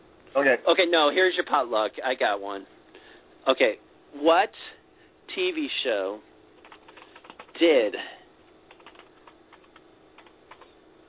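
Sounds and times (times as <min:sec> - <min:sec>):
steady low hum: 0:00.0 - 0:11.0
speech: 0:00.4 - 0:02.8, 0:03.4 - 0:06.3, 0:07.6 - 0:08.2
typing on a keyboard: 0:06.6 - 0:07.6, 0:08.7 - 0:10.7.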